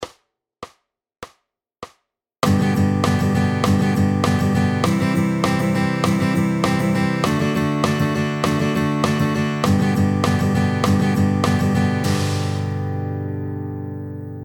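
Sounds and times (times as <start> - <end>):
100 BPM sixteenth notes on a beat: 2.4 - 13.1.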